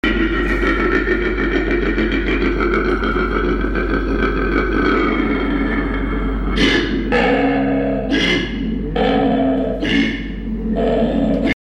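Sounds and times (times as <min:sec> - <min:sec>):
laughter: 0:00.0 - 0:06.6
koala calling: 0:05.5 - 0:11.6.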